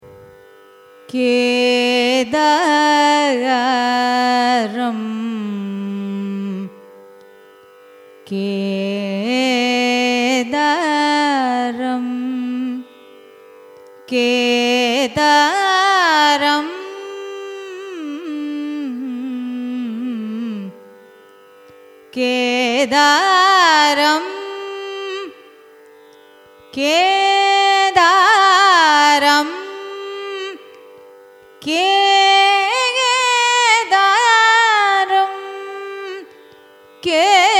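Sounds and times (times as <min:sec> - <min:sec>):
Carnatic music: 0:00.0 - 0:37.5.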